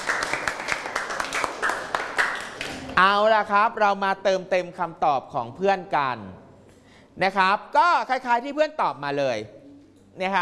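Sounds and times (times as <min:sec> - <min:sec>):
schoolchildren in a classroom clapping for a classmate: 0:00.0 - 0:02.9
speech: 0:03.0 - 0:06.4, 0:07.2 - 0:09.6, 0:10.2 - 0:10.3.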